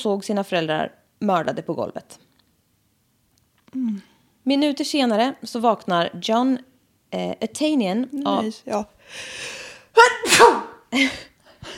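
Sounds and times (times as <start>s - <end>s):
speech: 0.0s - 2.2s, 3.7s - 11.7s
person sneezing: 10.0s - 11.7s.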